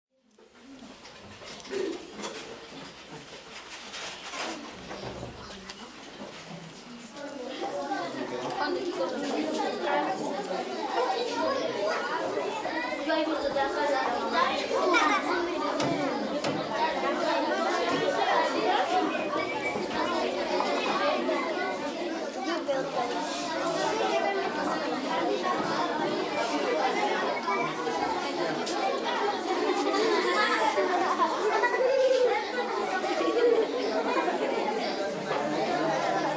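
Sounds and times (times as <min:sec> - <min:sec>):
children talking in an indoor cafeteria in Bolivia: 0:00.3 - 0:36.3
children laughing in an indoor cafeteria in Bolivia: 0:01.6 - 0:02.5, 0:09.7 - 0:22.2, 0:23.6 - 0:36.3.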